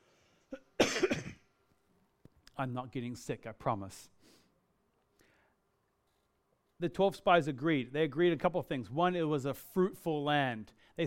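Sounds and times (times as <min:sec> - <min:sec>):
cough: 0:00.5 - 0:01.5
throat clearing: 0:00.5 - 0:01.5
speech: 0:02.6 - 0:04.2, 0:06.8 - 0:11.0.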